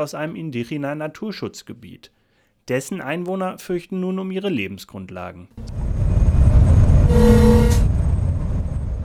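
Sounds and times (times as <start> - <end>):
speech: 0.0 - 6.0
large cargo ship brassy horn blast: 5.6 - 8.2
large cargo ship rumbling entering canal locks: 5.6 - 9.0.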